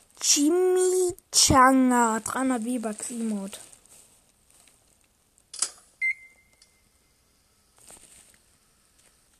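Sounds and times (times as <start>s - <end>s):
faint noise: 0.0s - 9.3s
speech: 0.2s - 3.7s
microwave oven beeping: 6.0s - 7.7s.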